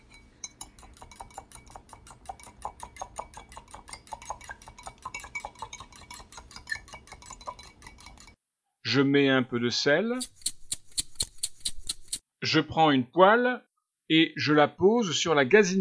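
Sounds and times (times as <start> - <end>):
eggs being beaten with a fork in a bowl: 0.0 - 8.4, 10.2 - 12.2
speech: 8.9 - 10.4, 12.5 - 15.8.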